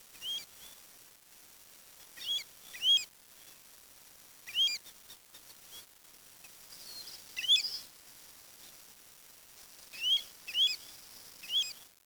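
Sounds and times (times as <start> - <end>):
steady low hiss: 0.0 - 12.0
bird chirps: 2.2 - 3.0, 4.5 - 4.8, 6.7 - 7.8, 10.0 - 11.8.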